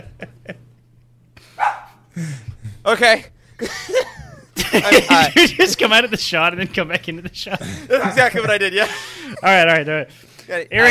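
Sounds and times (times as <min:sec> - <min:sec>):
laughter: 0:00.0 - 0:00.8, 0:03.6 - 0:09.8
dog barking: 0:01.6 - 0:02.0
speech: 0:02.2 - 0:04.1, 0:04.7 - 0:10.8.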